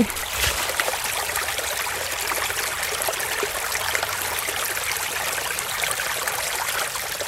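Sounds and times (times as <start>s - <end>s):
speech: 0.0s - 0.3s
creek water babbling and trickling: 0.0s - 7.2s.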